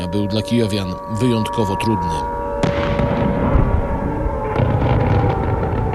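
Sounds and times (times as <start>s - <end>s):
speech: 0.1s - 3.0s
heavy rumbling explosions from ballistic missile strikes: 2.6s - 5.9s.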